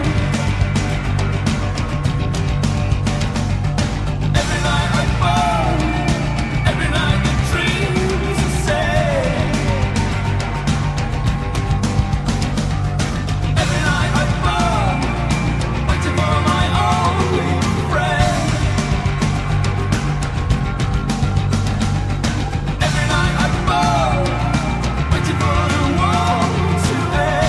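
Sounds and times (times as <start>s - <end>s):
person singing a vocal melody: 0.0s - 0.7s, 4.3s - 11.4s, 13.5s - 20.5s, 22.8s - 27.4s
drums in a rock band mix: 0.0s - 27.4s
guitars in a rock band mix: 0.0s - 27.4s
rock song from a film soundtrack: 0.0s - 27.4s.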